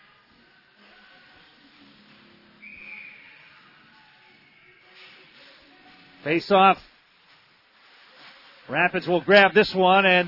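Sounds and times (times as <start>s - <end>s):
referee's whistle blast: 2.6s - 3.4s
speech: 6.2s - 6.9s, 8.7s - 10.2s.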